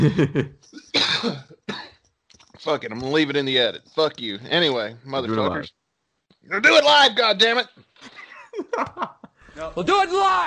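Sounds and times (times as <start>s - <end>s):
laughter: 0.0s - 0.7s, 8.0s - 9.4s
speech: 0.0s - 1.5s, 2.6s - 5.8s, 6.4s - 10.4s
person coughing: 0.0s - 2.0s.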